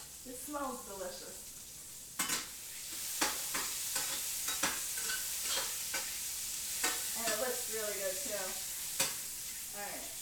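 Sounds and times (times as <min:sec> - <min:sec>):
soft sizzle of food in a hot pan: 0:00.0 - 0:10.1
speech: 0:00.2 - 0:01.5, 0:07.7 - 0:08.7, 0:09.8 - 0:10.1
utensil stirring and mixing food in a hot pan: 0:02.0 - 0:10.1.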